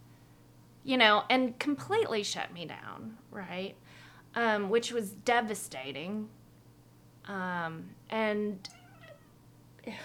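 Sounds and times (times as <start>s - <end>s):
speech: 0.8s - 6.4s, 7.2s - 8.8s, 9.8s - 10.0s
domestic cat meowing: 8.6s - 9.4s.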